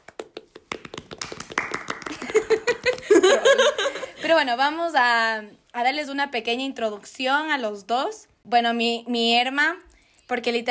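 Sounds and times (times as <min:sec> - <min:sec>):
small group clapping in a studio: 0:00.0 - 0:03.6
laughter: 0:02.1 - 0:04.3
speech: 0:04.3 - 0:10.6.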